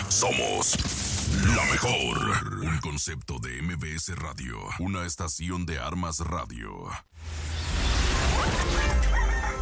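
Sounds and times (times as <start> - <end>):
speech: 0.2 - 7.6
rooster crowing: 8.9 - 9.6.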